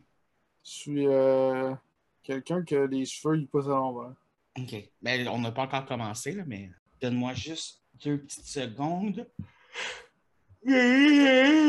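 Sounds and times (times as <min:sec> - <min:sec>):
speech: 0:00.7 - 0:10.0, 0:10.6 - 0:11.6
person yawning: 0:09.8 - 0:11.6.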